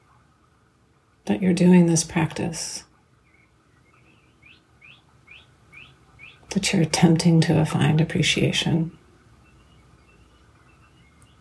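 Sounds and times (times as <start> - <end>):
birds chirping with bright rising tweets: 0.0 - 11.4
soft low hum: 0.0 - 11.4
speech: 1.3 - 2.9, 6.5 - 9.0.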